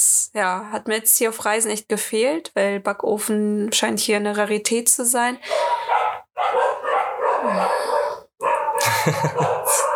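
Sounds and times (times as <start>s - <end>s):
speech: 0.2s - 6.0s, 7.5s - 7.9s
several dogs barking and yipping: 5.4s - 9.9s
laughter: 8.8s - 9.9s.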